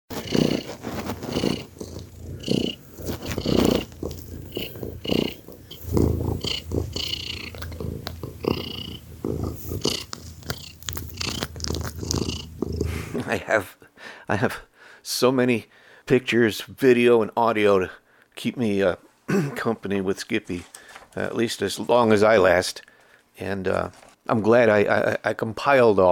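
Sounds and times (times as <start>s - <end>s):
cat purring hard with a grunting, rasping quality: 0.1s - 13.4s
speech: 13.4s - 26.1s.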